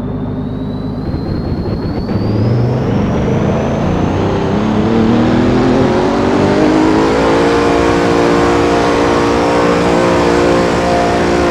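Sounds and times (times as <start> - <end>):
car engine revving: 0.0 - 11.4.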